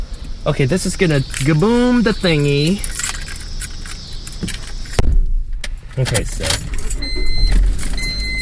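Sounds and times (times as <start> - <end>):
rustling movement in the car cabin: 0.2 - 8.3
speech: 0.4 - 3.0, 6.0 - 7.6
keys jingling and rattling: 1.0 - 5.0, 5.9 - 8.3
car door thud: 4.4 - 5.6.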